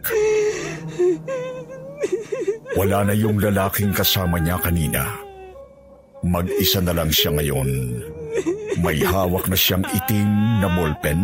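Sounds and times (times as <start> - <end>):
woman crying and whimpering: 0.0 - 6.7, 7.9 - 11.2
speech: 2.8 - 5.2, 6.2 - 11.2.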